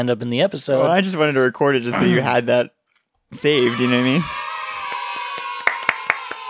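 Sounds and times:
speech: 0.0 - 4.5
sharp hand claps from a soundboard sound effect: 4.7 - 6.4.

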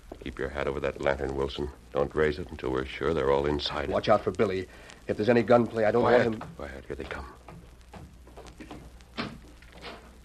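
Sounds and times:
speech: 0.2 - 7.4
door opening quietly: 6.0 - 10.2.

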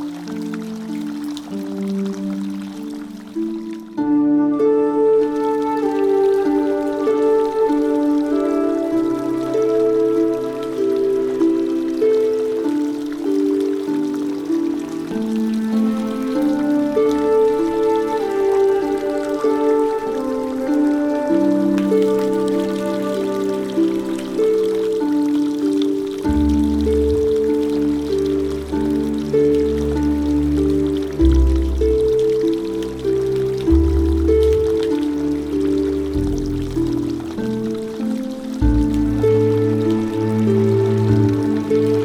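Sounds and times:
gentle traditional Chinese-style music with plucked melodic lines: 0.0 - 42.0
soft trickle of water: 0.0 - 42.0
low bass: 26.3 - 37.4, 38.6 - 42.0.

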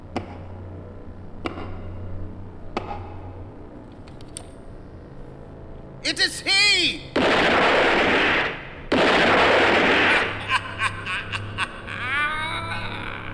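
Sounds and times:
speech: 6.0 - 7.6
several men firing guns together: 7.1 - 10.4
laughter: 10.1 - 13.3.

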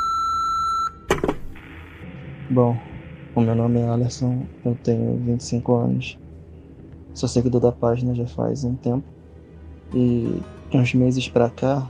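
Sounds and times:
voicemail box high electronic beep: 0.0 - 1.1
speech: 2.5 - 6.2, 7.2 - 9.2, 9.9 - 11.8.

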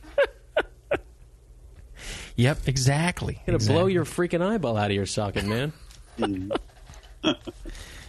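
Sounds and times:
sharp gasping breaths before a sneeze: 1.9 - 2.4, 7.7 - 8.0
speech: 2.4 - 7.6
laughter: 5.4 - 6.6.

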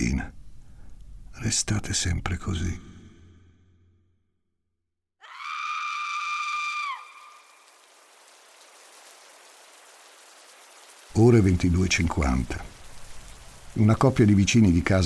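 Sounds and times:
steady soft rain hissing: 0.0 - 2.2, 5.8 - 15.0
speech: 0.1 - 0.4, 1.4 - 2.9, 11.2 - 12.7, 13.8 - 15.0
loud high-pitched scream: 5.2 - 7.7.

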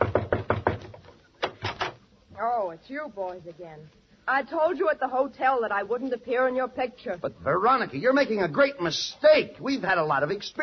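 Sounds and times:
knocking on a dressing room door: 0.0 - 2.0
speech: 2.6 - 10.6.

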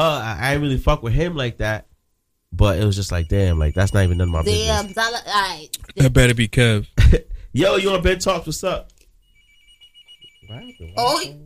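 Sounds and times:
speech: 0.0 - 1.9, 2.5 - 9.0, 10.5 - 11.4
telephone ringing with a steady electronic tone: 2.8 - 5.6, 9.2 - 11.4.

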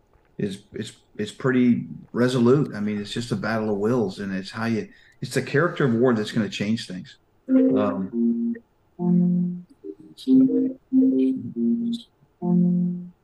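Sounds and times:
speech: 0.4 - 8.4, 9.0 - 9.4, 10.2 - 13.0
phone playing back audio of a voice speaking: 7.5 - 8.4, 9.0 - 13.0.

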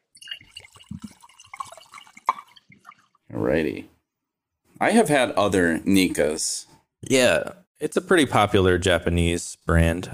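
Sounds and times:
scotch whisky being poured into a glass: 0.0 - 3.3
speech: 3.4 - 3.9, 4.8 - 10.1.

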